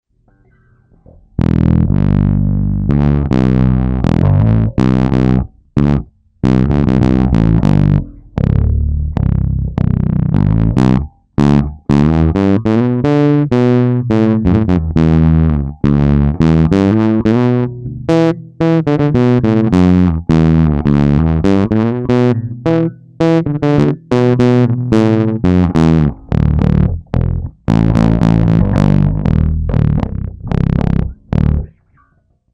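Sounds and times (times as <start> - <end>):
bass fuzz: 0.2 - 32.0.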